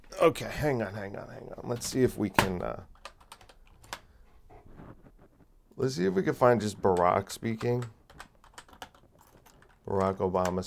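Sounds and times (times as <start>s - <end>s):
speech: 0.2s - 3.0s, 5.8s - 8.0s, 9.8s - 10.6s
computer keyboard typing: 1.7s - 10.6s.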